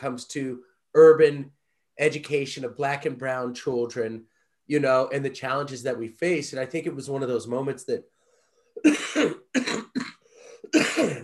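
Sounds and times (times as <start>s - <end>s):
speech: 0.0s - 8.1s, 8.8s - 10.0s, 10.7s - 11.2s
person coughing: 8.8s - 11.2s.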